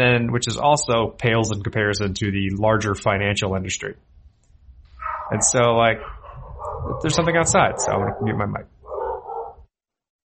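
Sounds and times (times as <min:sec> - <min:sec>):
speech: 0:00.0 - 0:04.1, 0:05.3 - 0:06.2, 0:06.8 - 0:08.8
household dog barking: 0:05.0 - 0:09.6.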